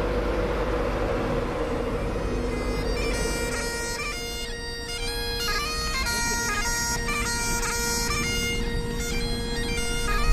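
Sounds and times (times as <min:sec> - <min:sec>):
intercity train engine drone at a station: 0:00.0 - 0:10.3
layered high whining tones: 0:00.0 - 0:10.3.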